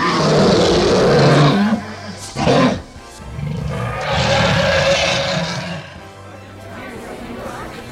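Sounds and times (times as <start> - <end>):
dragon's deep rumbling roar: 0.0 - 6.0.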